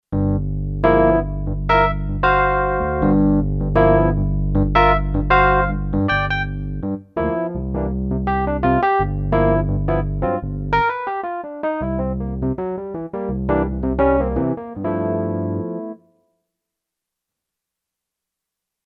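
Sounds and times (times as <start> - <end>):
suitcase electric piano on Kurzweil K2500X: 0.1 - 16.1.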